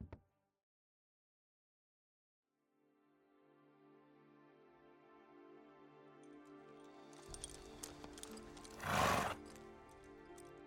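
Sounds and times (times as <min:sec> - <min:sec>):
horse hooves clopping: 0:07.1 - 0:10.6
horse neighing: 0:08.8 - 0:09.4.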